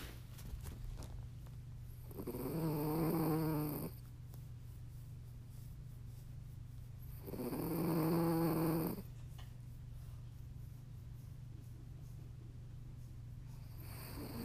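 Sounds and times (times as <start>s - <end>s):
steady low hum: 0.0s - 14.4s
puppy snoring with a raspy rising buzz: 1.9s - 4.1s, 7.0s - 9.1s, 13.5s - 14.4s.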